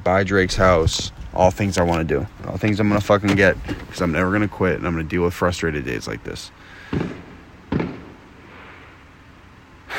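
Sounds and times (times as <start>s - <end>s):
speech: 0.0s - 7.2s
low hiss: 0.0s - 9.9s
firework bangs: 6.9s - 9.0s.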